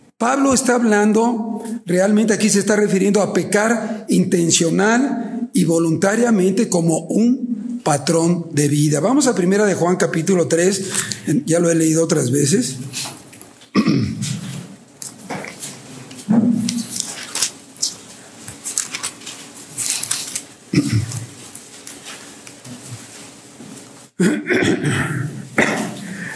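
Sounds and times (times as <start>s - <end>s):
speech: 0.2s - 13.2s, 24.2s - 25.2s
short harsh coughs: 13.7s - 14.4s, 20.7s - 21.3s, 24.2s - 26.3s
throat clearing: 13.7s - 14.6s, 20.7s - 21.3s, 24.2s - 26.2s.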